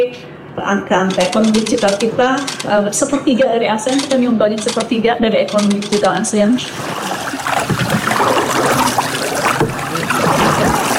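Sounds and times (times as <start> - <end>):
speech: 0.0 - 7.2
soft water splashes: 6.6 - 10.9
water lapping and rippling around a small boat: 6.6 - 10.9.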